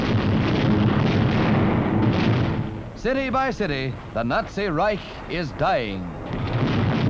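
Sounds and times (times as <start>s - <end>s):
explosions and fires during a bombing raid on a city: 0.0s - 7.0s
speech: 3.0s - 6.5s.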